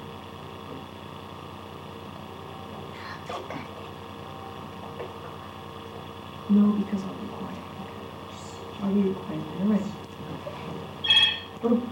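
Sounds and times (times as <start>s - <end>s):
quiet room hum: 0.0s - 11.9s
speech: 3.3s - 3.8s, 6.5s - 7.4s, 8.8s - 10.0s, 11.6s - 11.9s
brief lower tone: 11.0s - 11.6s
high electronic telephone ring: 11.0s - 11.6s.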